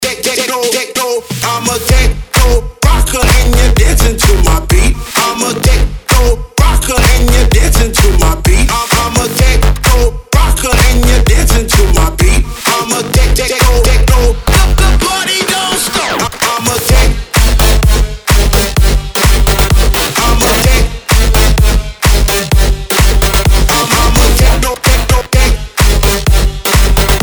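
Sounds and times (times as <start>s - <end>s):
techno rock music: 0.0s - 27.2s.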